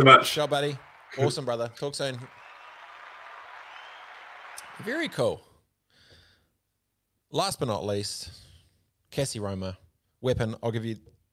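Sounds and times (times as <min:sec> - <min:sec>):
speech: 0:00.0 - 0:02.4, 0:04.8 - 0:05.5, 0:07.3 - 0:08.5, 0:09.1 - 0:11.1
crowd applauding: 0:00.0 - 0:05.4.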